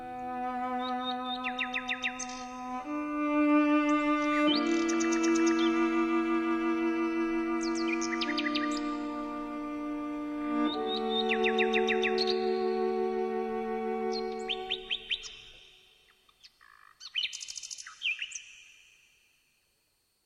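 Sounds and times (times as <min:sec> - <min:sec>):
slow sustained cello notes: 0:00.0 - 0:14.9
nightingale singing in chirps and trills: 0:00.0 - 0:19.2.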